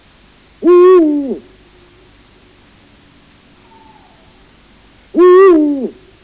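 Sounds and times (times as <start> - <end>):
Bubo bubo calling: 0.6 - 2.0, 3.5 - 6.1.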